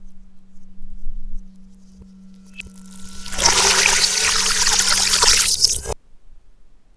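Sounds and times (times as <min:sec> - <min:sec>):
reversed water pouring into a metal bowl: 0:02.6 - 0:06.0.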